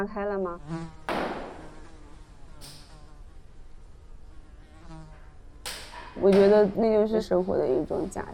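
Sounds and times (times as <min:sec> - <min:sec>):
speech: 0:00.0 - 0:01.3, 0:06.2 - 0:08.3
housefly buzzing in Dali China: 0:00.0 - 0:08.3
knock: 0:01.1 - 0:01.6.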